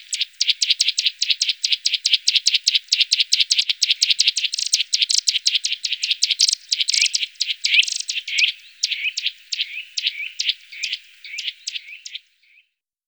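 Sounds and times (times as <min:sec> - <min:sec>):
Eurasian nuthatch calls: 0:00.0 - 0:12.6.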